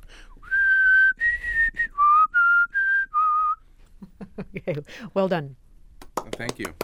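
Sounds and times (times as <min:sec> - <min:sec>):
person whistling a fanfare: 0:00.4 - 0:03.6
speech: 0:04.5 - 0:05.6, 0:06.4 - 0:06.8.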